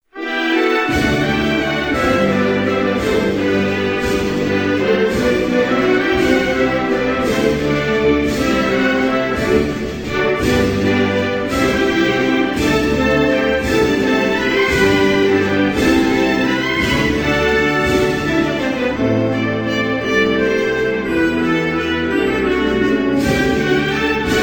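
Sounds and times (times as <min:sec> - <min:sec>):
national anthem: 0:00.0 - 0:24.4.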